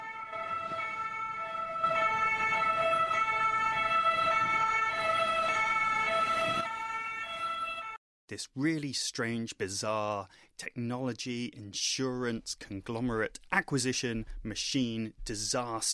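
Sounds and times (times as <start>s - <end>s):
ambulance siren wailing: 0.0s - 8.0s
speech: 8.3s - 15.9s.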